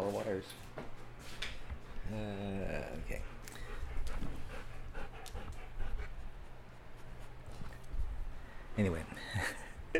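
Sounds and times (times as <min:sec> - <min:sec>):
speech: 0:00.3 - 0:00.8, 0:02.1 - 0:03.4, 0:08.8 - 0:09.9
dog sniffing and panting: 0:03.0 - 0:07.8.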